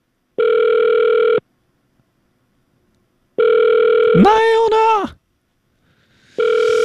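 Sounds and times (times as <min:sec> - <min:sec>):
telephone ringback tone while calling: 0:00.4 - 0:01.4, 0:03.4 - 0:04.2, 0:06.4 - 0:06.8
person speaking: 0:04.1 - 0:05.2.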